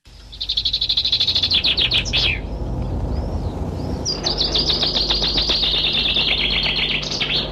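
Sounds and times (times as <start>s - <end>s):
common whitethroat singing scratchy trilled phrases: 0.0s - 7.5s
low steady rumble: 0.1s - 7.5s.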